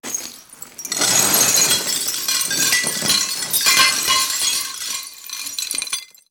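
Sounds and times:
glass crashing with reverb: 0.0 - 6.2.

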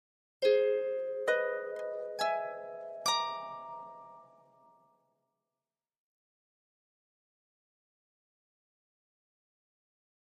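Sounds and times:
harp slow arpeggio: 0.4 - 4.8.

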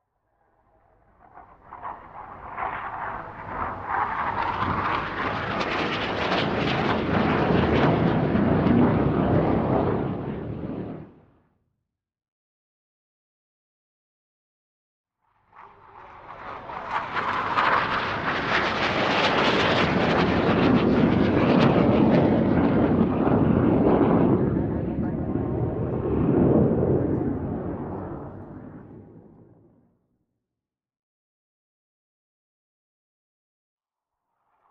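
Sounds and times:
Hawk plane flying by fast: 1.0 - 11.3, 15.4 - 29.6.

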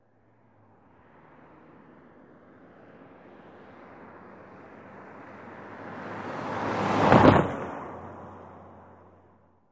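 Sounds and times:
car tires rolling over railroad: 5.2 - 8.3.

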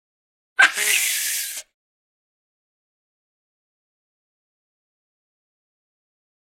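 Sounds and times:
baboon whimpering nasally: 0.6 - 1.6.

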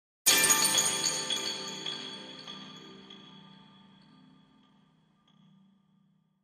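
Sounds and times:
Chinese chime bells struck with mallets: 0.3 - 3.6.

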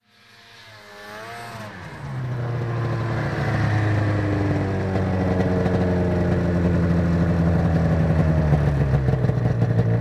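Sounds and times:
snowmobile stopping: 0.0 - 9.9.

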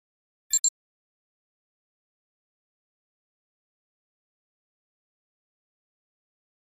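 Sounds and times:
high-frequency flash double beep: 0.5 - 0.7.

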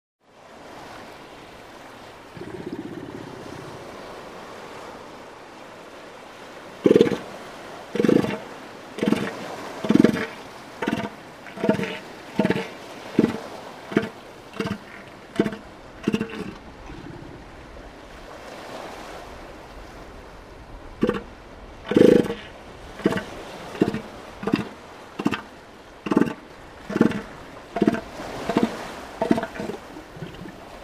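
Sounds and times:
elephant seal growling: 6.8 - 7.3, 8.0 - 17.4, 21.0 - 21.3, 21.9 - 30.6.

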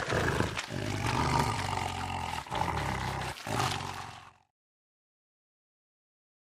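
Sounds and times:
lion roaring with a harsh rasping growl: 0.0 - 4.5.

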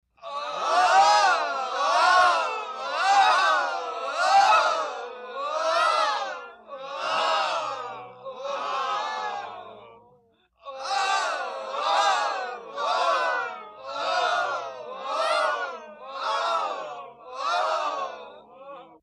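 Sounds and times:
group of people wailing: 0.2 - 19.0.

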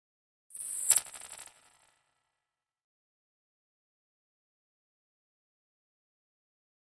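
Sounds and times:
electronic whip with reverb: 0.5 - 2.0.

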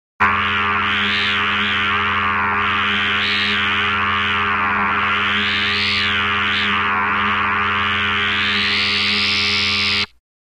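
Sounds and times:
buzz: 0.2 - 10.1
hum: 0.2 - 10.2
multi-pitched oscillator: 0.2 - 10.2.

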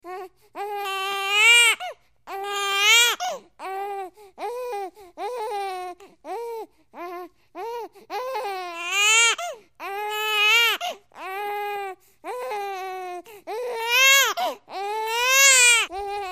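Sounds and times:
baby whining and crying: 0.0 - 16.2.

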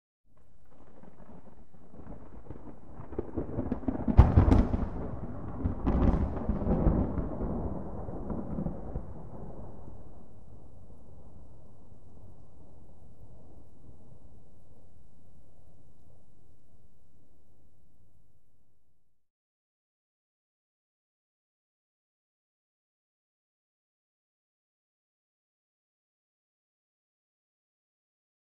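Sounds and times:
close thunder rip: 0.6 - 14.5.

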